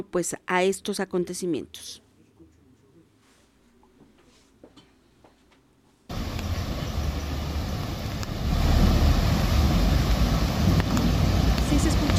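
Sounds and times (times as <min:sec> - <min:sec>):
speech: 0:00.0 - 0:02.0
rushing floodwater of overflowing river: 0:06.1 - 0:12.1.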